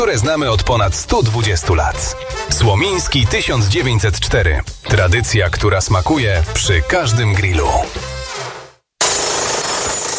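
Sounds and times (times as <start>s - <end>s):
speech: 0.0s - 8.1s
jackhammer hammering: 9.0s - 10.1s.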